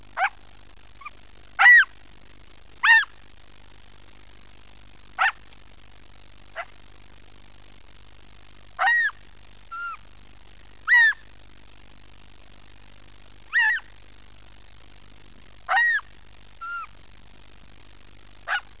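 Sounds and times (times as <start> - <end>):
fox kit chirping: 0.2 - 0.4, 1.0 - 2.0, 2.8 - 3.2, 5.2 - 5.4, 8.8 - 10.0, 10.8 - 11.3, 13.5 - 14.0, 15.7 - 17.0, 18.4 - 18.7.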